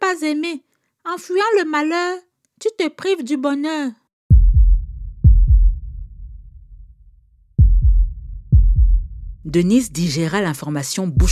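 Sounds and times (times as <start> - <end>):
speech: 0.2 - 4.0, 9.5 - 11.2
woman's heart pounding: 4.3 - 6.8, 7.6 - 10.4.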